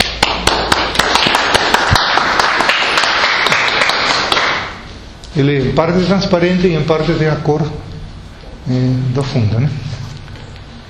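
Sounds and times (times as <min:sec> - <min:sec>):
audience applauding: 0:00.0 - 0:04.7
speech: 0:05.4 - 0:07.9, 0:08.7 - 0:10.0.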